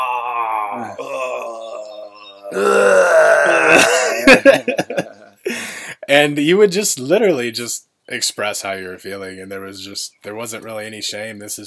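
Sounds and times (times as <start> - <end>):
man grunting: 0.0 - 1.9, 2.5 - 4.4
man groaning in imitation: 0.0 - 4.4
speech: 0.8 - 1.2, 2.5 - 2.9, 3.8 - 5.2, 6.1 - 11.6
laughter: 3.8 - 5.4.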